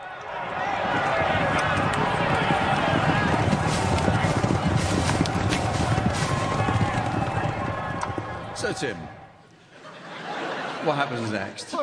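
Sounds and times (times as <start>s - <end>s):
crowd roaring at a horse race: 0.0s - 10.8s
galloping hooves of racing horses: 0.1s - 9.3s
laughter: 8.2s - 11.6s
speech: 8.7s - 9.1s, 10.8s - 11.8s.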